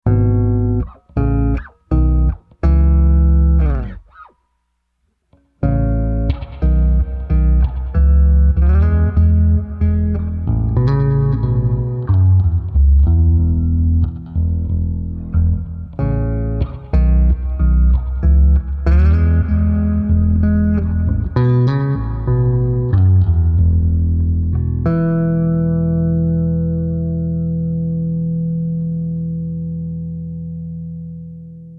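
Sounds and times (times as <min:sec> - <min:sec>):
concert hall bass with reverb: 0:00.0 - 0:04.2, 0:05.6 - 0:31.7.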